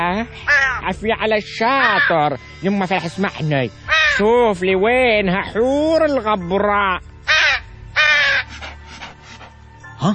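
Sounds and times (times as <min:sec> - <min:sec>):
speech: 0:00.0 - 0:07.1
crow cawing: 0:00.4 - 0:00.9, 0:01.7 - 0:02.3, 0:03.9 - 0:04.3, 0:07.2 - 0:08.8.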